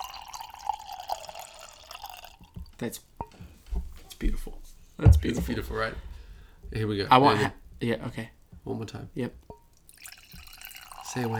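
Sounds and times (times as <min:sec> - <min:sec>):
cheap wine pouring into a cup: 0:00.0 - 0:02.8, 0:09.9 - 0:11.3
speech: 0:02.8 - 0:03.2, 0:04.2 - 0:06.1, 0:06.7 - 0:09.4, 0:11.1 - 0:11.3.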